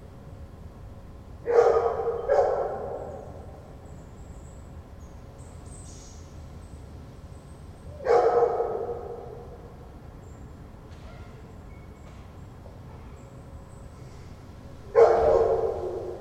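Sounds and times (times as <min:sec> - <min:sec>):
low background hum: 0:00.0 - 0:16.1
dog barking over a patio: 0:01.4 - 0:03.4, 0:07.9 - 0:09.7, 0:14.9 - 0:16.1.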